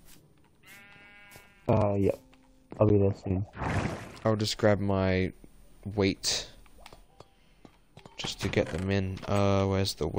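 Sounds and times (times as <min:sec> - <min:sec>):
sheep bleating: 0:00.6 - 0:02.0
speech: 0:01.7 - 0:02.2, 0:02.8 - 0:06.5, 0:08.2 - 0:10.1.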